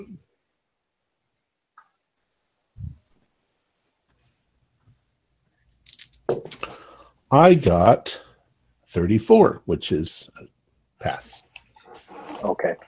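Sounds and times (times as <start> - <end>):
pile of dice clattering out onto a surface: 5.9 - 6.6
speech: 7.3 - 8.2, 8.9 - 11.4, 12.0 - 12.8.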